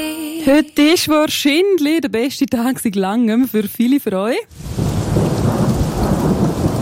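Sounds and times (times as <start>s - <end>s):
speech: 0.4s - 4.8s
heavy rain: 4.5s - 6.8s
thunder rumbling: 4.5s - 6.8s.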